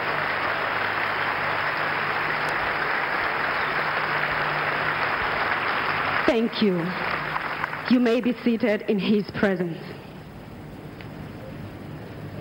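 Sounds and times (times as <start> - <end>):
audience applauding during a church service: 0.0 - 8.0
speech: 6.3 - 7.1, 7.9 - 10.0.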